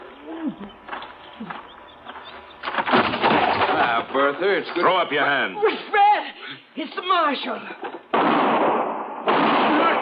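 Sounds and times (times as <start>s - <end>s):
speech: 0.4s - 0.8s, 1.4s - 1.6s, 4.1s - 7.9s
gunshot blasts during a Western-style holdup: 2.6s - 4.0s, 8.1s - 10.0s.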